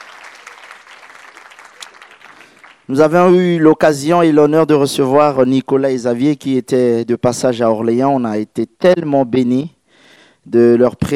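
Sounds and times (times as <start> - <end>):
church congregation applauding during a worship service: 0.0 - 2.9
speech: 2.9 - 9.8, 10.4 - 11.1.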